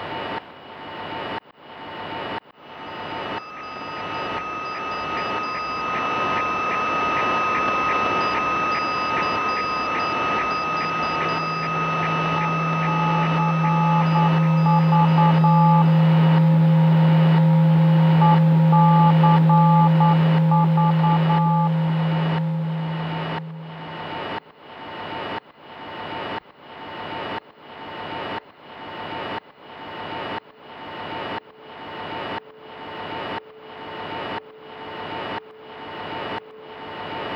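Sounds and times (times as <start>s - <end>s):
shortwave radio whistling tones while swept across the band: 4.0s - 24.3s
regular ticking pulse: 9.1s - 24.1s
loud low drone: 12.1s - 24.1s.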